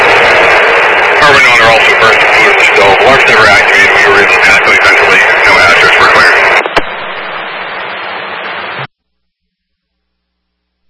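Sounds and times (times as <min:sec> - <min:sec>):
two-way radio hiss and static: 0:00.0 - 0:08.9
steady crackling noise: 0:00.0 - 0:10.8
garbled distorted two-way radio transmission voice: 0:01.1 - 0:07.5
two-way radio click: 0:05.5 - 0:07.2.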